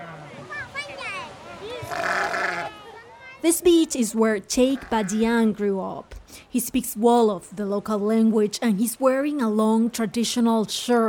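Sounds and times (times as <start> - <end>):
faint murmur: 0.0 - 6.3
sheep and goats bleating: 1.8 - 2.8, 4.8 - 5.2
speech: 1.9 - 2.2, 3.4 - 11.0.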